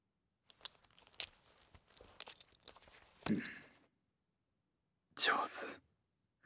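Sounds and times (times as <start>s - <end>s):
metallic belt buckle being undone: 0.5s - 3.7s
speech: 3.3s - 3.6s.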